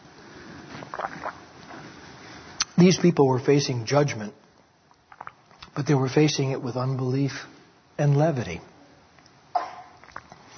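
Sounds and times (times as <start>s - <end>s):
speech: 2.8s - 4.4s, 5.8s - 8.7s
person coughing: 9.6s - 9.9s.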